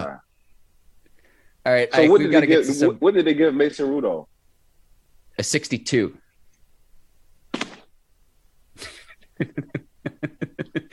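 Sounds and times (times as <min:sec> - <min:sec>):
speech: 0:01.7 - 0:04.3, 0:05.4 - 0:06.2, 0:09.4 - 0:09.8
man tumbling out of his chair with a sharp thump: 0:07.5 - 0:07.9
loud rhythmic laughter: 0:08.8 - 0:10.9.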